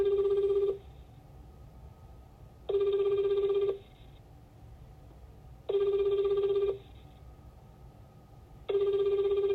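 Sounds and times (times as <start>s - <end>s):
telephone ringback tone while a call to a company is put through: 0.0s - 0.9s, 2.7s - 3.9s, 5.7s - 7.0s, 8.7s - 9.5s.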